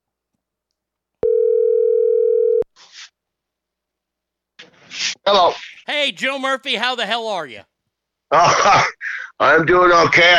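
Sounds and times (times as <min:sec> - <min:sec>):
electronic ringback tone on a phone line: 0:01.2 - 0:02.6
speech: 0:05.3 - 0:07.7, 0:08.3 - 0:10.3.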